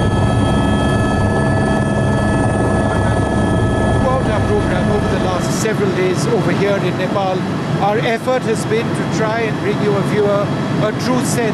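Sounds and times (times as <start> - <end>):
sustained tonal hums: 0.0 - 7.9
aircraft engine drone on approach into Kathmandu Airport: 0.0 - 11.5
speech: 5.7 - 11.5.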